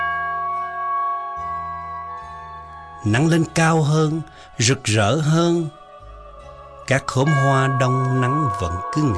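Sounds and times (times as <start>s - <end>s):
deep Zen temple meditation bell tolling in a mountain forest in India: 0.0s - 3.5s, 7.2s - 9.1s
speech: 3.0s - 5.8s, 6.9s - 9.1s.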